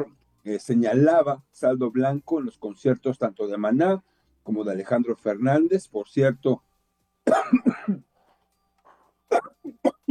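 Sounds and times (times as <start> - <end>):
speech: 0.0 - 6.7
person with a recovering voice coughing: 7.2 - 8.1, 9.3 - 10.0.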